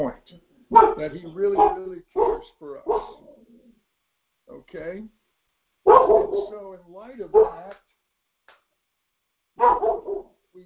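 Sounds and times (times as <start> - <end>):
speech: 0.1 - 3.3, 4.5 - 5.2, 5.9 - 7.8, 9.6 - 10.6
excited dog barking: 0.7 - 3.3, 5.9 - 6.6, 7.3 - 7.7, 9.6 - 10.4.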